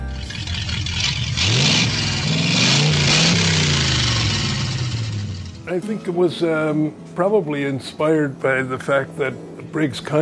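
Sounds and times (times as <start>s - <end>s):
vintage car with early fluid-drive automatic transmission idling and accelerating: 0.0s - 5.7s
speech: 5.7s - 10.2s.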